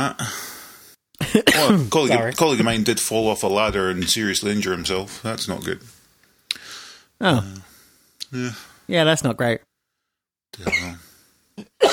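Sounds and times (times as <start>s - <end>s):
speech: 0.0s - 0.4s, 1.4s - 6.0s, 7.2s - 7.7s, 8.3s - 9.7s, 10.5s - 10.8s
person coughing harsh raspy coughs: 1.2s - 2.8s, 10.6s - 11.0s, 11.6s - 11.9s.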